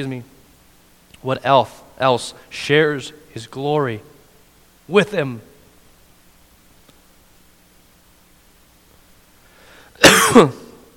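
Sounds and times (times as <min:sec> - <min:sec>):
speech: 0:00.0 - 0:00.4, 0:01.2 - 0:04.1, 0:04.9 - 0:05.5, 0:10.3 - 0:10.6
loud cough with harsh throat-clearing rasp: 0:10.0 - 0:10.9.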